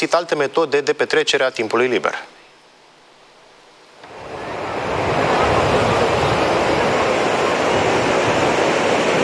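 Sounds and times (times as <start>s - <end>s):
speech: 0.0s - 2.4s
large sea waves crashing: 4.0s - 9.2s
strong wind buffeting the microphone: 4.1s - 9.2s.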